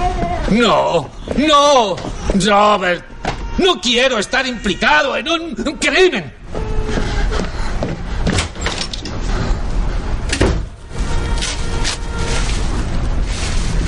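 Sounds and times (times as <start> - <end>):
dense continuous wash of loud sound: 0.0 - 13.8
speech: 0.5 - 6.6
door slamming shut as a man storms out: 10.3 - 10.8.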